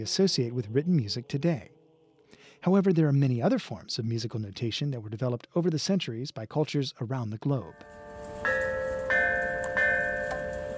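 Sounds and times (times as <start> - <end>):
speech: 0.0 - 1.8, 2.6 - 8.6
ancient Chinese bells from a set dating to the 5th century BCE ringing: 7.7 - 10.7.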